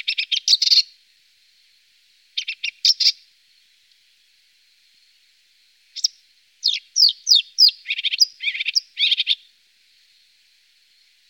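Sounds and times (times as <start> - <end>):
marsh warbler song of harsh scratchy chattering notes: 0.0 - 0.9, 2.4 - 3.2, 5.9 - 9.5.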